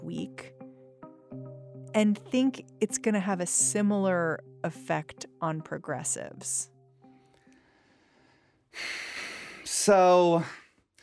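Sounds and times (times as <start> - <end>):
speech: 2.0 - 6.7, 9.8 - 10.6
deep breath taken mid-conversation: 7.1 - 9.7.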